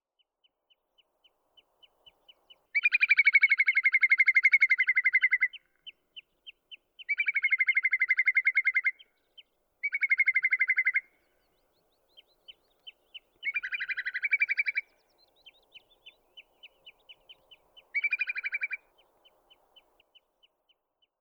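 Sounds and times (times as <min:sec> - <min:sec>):
whimbrel Numenius phaeopus calling: 0:02.8 - 0:05.7, 0:07.0 - 0:09.1, 0:09.8 - 0:11.3, 0:12.4 - 0:19.9.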